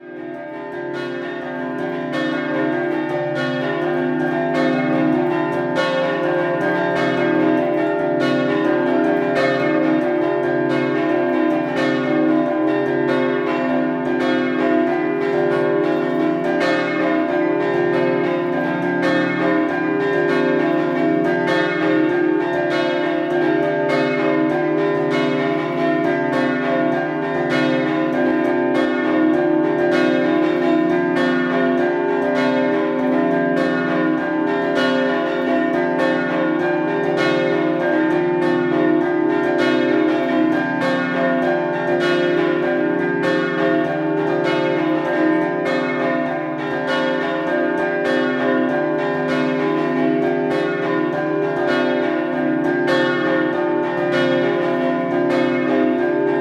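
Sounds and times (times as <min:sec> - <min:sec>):
scampanottata bells ringing in Martignacco: 0:00.0 - 0:56.4.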